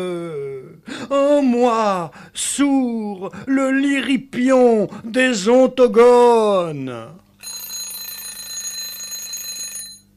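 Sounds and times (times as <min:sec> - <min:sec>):
speech: 0:01.1 - 0:07.2
alarm clock ringing with shrill metallic buzz: 0:07.4 - 0:10.1.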